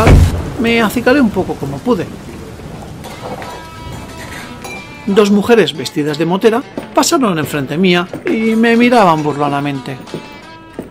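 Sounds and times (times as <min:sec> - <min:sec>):
low rumble of thunder: 0:00.0 - 0:04.6
heavy rain pouring: 0:00.0 - 0:06.0
speech: 0:00.6 - 0:02.4, 0:05.1 - 0:10.4.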